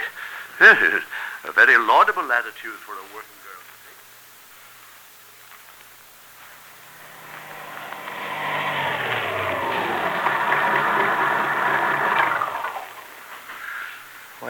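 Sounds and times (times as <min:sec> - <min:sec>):
speech: 0:00.6 - 0:03.4
car engine humming as the car drives and pulls to a stop: 0:06.4 - 0:13.2.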